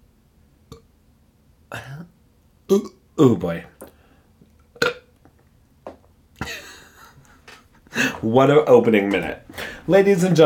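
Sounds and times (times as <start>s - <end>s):
throaty burp: 2.7s - 3.0s, 4.7s - 5.1s
speech: 2.7s - 3.7s, 8.2s - 10.4s.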